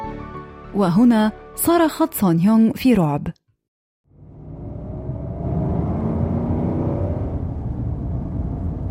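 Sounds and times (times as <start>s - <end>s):
speech: 0.8s - 3.4s
car engine starting and rumbling while driving on snowy road: 4.1s - 8.8s
tires whirring on road: 4.1s - 8.8s.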